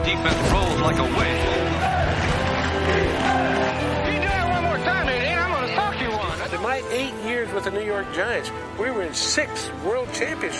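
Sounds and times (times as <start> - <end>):
professional football crowd roaring at the Polo Grounds in New York: 0.0 - 7.2
speech: 0.1 - 1.6, 6.7 - 10.5.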